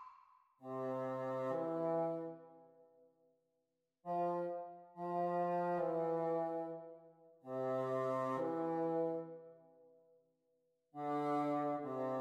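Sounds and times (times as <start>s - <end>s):
bassoon duet practising speed: 0.7s - 2.5s, 4.1s - 9.5s, 11.0s - 12.1s.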